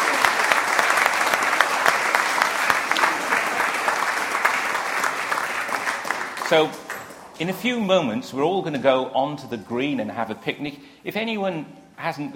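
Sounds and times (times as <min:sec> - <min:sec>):
audience applauding: 0:00.0 - 0:07.2
speech: 0:06.5 - 0:06.8, 0:07.4 - 0:12.3.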